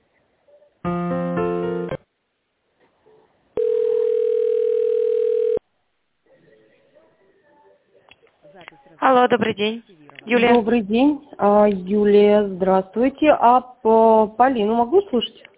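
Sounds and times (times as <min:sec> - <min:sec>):
telephone ringing tones while a call is transferred on hold: 0:03.6 - 0:05.6
speech: 0:09.2 - 0:15.5.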